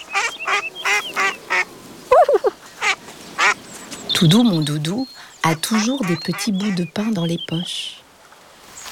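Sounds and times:
ducks quacking on a pond: 0.0s - 1.7s, 2.8s - 3.6s, 5.4s - 7.4s
speech: 4.2s - 8.0s.

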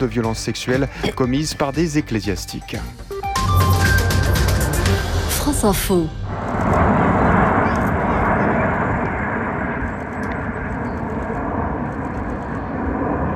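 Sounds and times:
speech: 0.0s - 3.7s, 5.5s - 7.0s
formation of Alpha Jet military jets roaring across the New York sky: 4.5s - 13.3s.

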